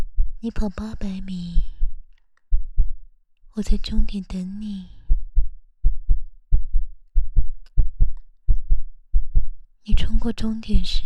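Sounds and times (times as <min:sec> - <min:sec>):
fast heartbeat with low double beats: 0:00.0 - 0:00.4, 0:01.5 - 0:03.0, 0:05.0 - 0:11.0
speech: 0:00.4 - 0:01.7, 0:03.6 - 0:05.0, 0:09.8 - 0:11.0.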